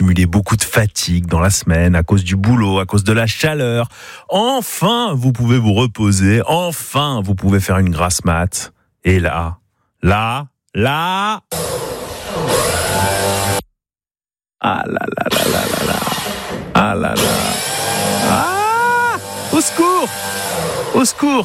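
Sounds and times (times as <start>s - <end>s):
speech: 0.2s - 13.2s, 14.6s - 16.0s, 16.8s - 17.6s, 19.6s - 21.4s
person exclaiming: 10.8s - 11.5s, 14.6s - 17.4s, 18.2s - 20.1s
neighbor's power drill whirring: 11.5s - 13.7s, 15.3s - 21.4s.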